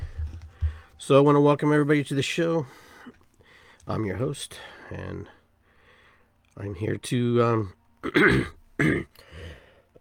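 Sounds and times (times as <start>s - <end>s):
speech: 1.0s - 3.2s, 3.9s - 5.4s, 6.6s - 9.5s
man clearing throat: 8.0s - 9.1s.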